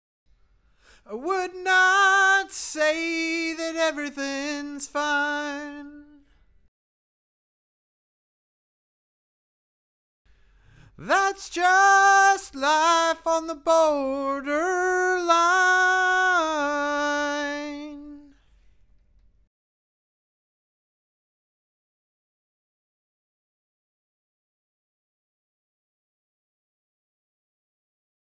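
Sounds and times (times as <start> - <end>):
backing vocals: 1.0 - 6.2, 10.8 - 18.4.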